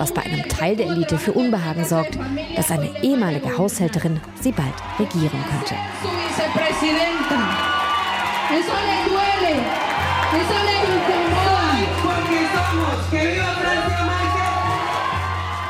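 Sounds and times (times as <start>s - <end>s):
speech: 0.0s - 7.8s, 8.5s - 11.4s
large crowd cheering and whooping: 4.4s - 15.6s.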